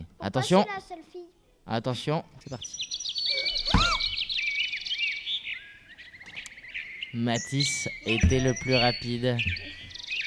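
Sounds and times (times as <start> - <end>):
birds chirping and twittering: 0.0 - 10.2
speech: 0.2 - 1.1, 1.7 - 3.0, 7.1 - 9.8
low thump: 8.2 - 8.9.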